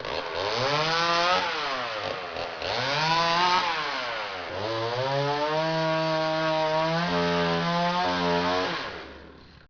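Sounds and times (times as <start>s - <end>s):
chainsaw: 0.0s - 9.6s.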